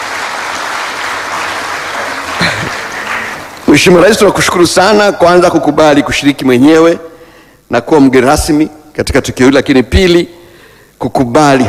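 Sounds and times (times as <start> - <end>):
crowd applauding the president at a formal ceremony: 0.0 - 3.8
speech: 3.7 - 10.4, 11.0 - 11.6.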